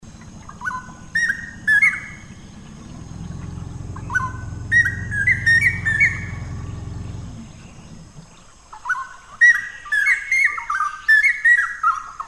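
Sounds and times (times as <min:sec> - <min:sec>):
low steady rumble: 0:00.0 - 0:08.6
straw-headed bulbul bubbling whistled song: 0:00.0 - 0:12.2.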